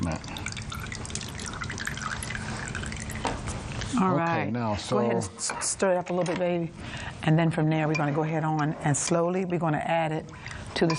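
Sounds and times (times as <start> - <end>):
lemon juice dripping and trickling from a squeezed lemon: 0.0 - 3.9
speech: 0.1 - 0.4, 3.9 - 10.9.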